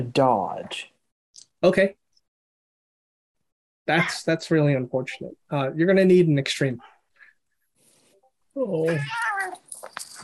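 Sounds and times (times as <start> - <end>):
speech: 0.0 - 0.9, 1.6 - 2.0, 3.9 - 6.9, 8.6 - 10.2
voice imitating horrible cat yowling: 8.8 - 9.6.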